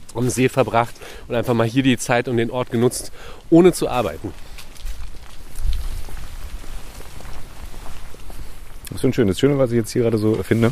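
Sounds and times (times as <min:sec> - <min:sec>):
dry leaves rustling across the ground in wind: 0:00.0 - 0:10.7
speech: 0:00.2 - 0:04.5, 0:09.0 - 0:10.7
low gusty wind rumble: 0:03.5 - 0:09.9.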